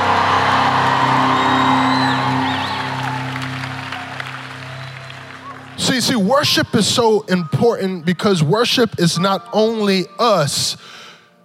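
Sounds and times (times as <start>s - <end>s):
large crowd screaming and cheering with whoops and shouts: 0.0s - 6.6s
steady low musical tones: 0.0s - 11.4s
speech: 6.0s - 11.0s.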